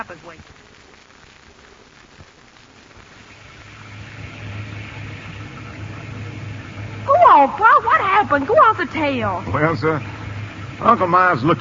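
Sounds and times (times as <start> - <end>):
steady rain hiss of a storm: 0.0 - 11.5
low wind rumble of a storm: 3.0 - 11.5
speech: 7.4 - 10.2, 10.8 - 11.5.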